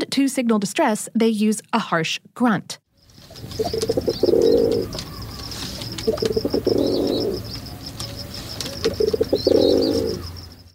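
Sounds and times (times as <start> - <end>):
speech: 0.1 - 2.8, 3.4 - 5.1, 6.0 - 7.5
faint high chirping: 3.0 - 10.7
rock pigeon cooing: 3.2 - 10.4.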